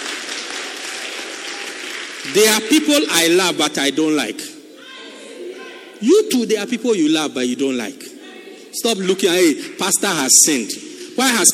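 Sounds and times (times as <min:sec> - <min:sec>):
audience applauding: 0:00.0 - 0:03.1
speech: 0:02.3 - 0:04.5, 0:06.0 - 0:08.1, 0:08.8 - 0:11.5.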